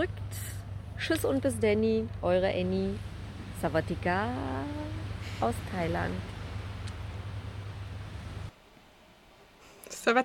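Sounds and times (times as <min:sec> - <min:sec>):
speech: 0:01.0 - 0:06.3, 0:10.0 - 0:10.2
faint hiss: 0:02.0 - 0:10.2
ocean waves: 0:02.3 - 0:09.8.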